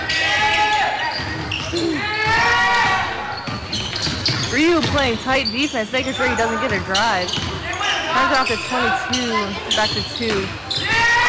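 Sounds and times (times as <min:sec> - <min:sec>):
crowd noise: 0:00.0 - 0:11.2
basketball dribbled on a court during a game: 0:01.1 - 0:11.2
speech: 0:04.6 - 0:07.5, 0:08.1 - 0:10.6.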